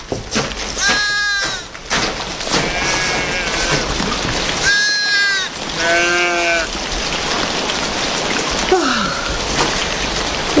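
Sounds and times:
icy rain falling on a surface: 0.0s - 10.5s
sheep bleating: 2.6s - 3.9s, 4.6s - 6.7s.

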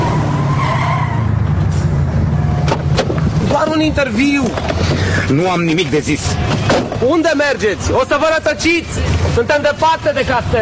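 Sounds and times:
car tires skidding squeal: 0.0s - 1.6s
car engine rumbling: 0.0s - 10.6s
speech: 3.8s - 10.6s.

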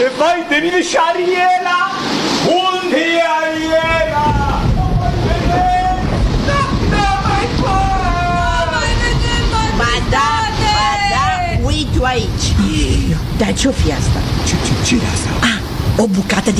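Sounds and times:
speech: 0.0s - 3.8s, 13.4s - 16.5s
huge wave crashing over a ship: 0.0s - 16.5s
stormy sea roaring: 0.0s - 16.5s
voices shouting and crying out: 2.4s - 13.3s.

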